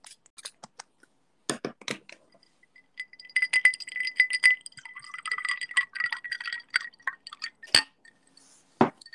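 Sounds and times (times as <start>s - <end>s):
sharp glass clinks: 2.3s - 9.1s
vodka pouring into a glass: 2.8s - 8.0s.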